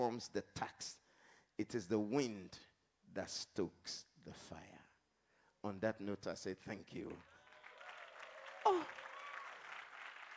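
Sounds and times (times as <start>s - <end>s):
speech: 0.0s - 1.0s, 1.6s - 4.8s, 5.6s - 7.4s, 8.6s - 9.1s
audience clapping: 6.9s - 10.3s
person shouting or whooping: 8.5s - 9.6s.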